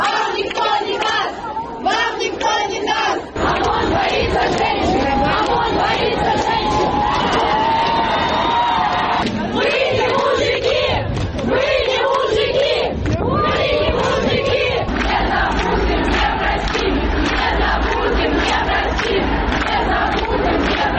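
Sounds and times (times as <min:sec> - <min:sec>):
large protest crowd chanting slogans in unison: 0:00.0 - 0:20.9.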